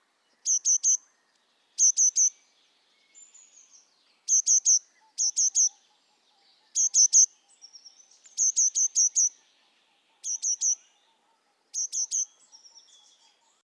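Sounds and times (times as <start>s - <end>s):
Eurasian blue tit calling: 0.4s - 1.0s, 1.8s - 2.4s, 4.3s - 5.8s, 6.8s - 7.4s, 8.3s - 9.4s, 10.2s - 10.9s, 11.7s - 13.4s.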